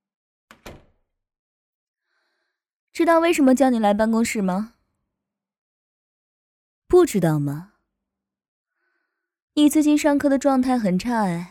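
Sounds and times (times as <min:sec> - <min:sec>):
office door thudding shut: 0:00.5 - 0:01.0
speech: 0:03.0 - 0:04.8, 0:06.9 - 0:07.7, 0:09.6 - 0:11.4.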